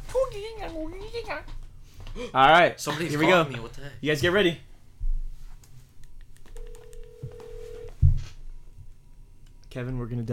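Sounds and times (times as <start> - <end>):
speech: 0.6 - 1.6, 2.2 - 4.7, 9.7 - 10.3
phone dialing clicks: 6.4 - 8.0.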